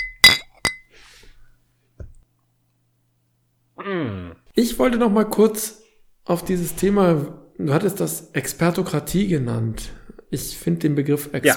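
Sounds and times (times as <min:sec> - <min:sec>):
glasses clinking in a toast: 0:00.0 - 0:00.9
speech: 0:03.8 - 0:11.5.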